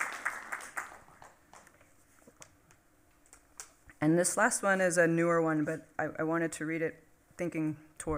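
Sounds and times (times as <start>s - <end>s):
audience applause after a poem reading: 0.0s - 1.7s
speech: 4.0s - 8.1s.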